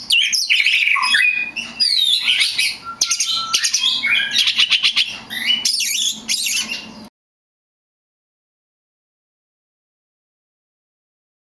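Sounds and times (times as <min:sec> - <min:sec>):
Oriental magpie-robin song: 0:00.0 - 0:07.1.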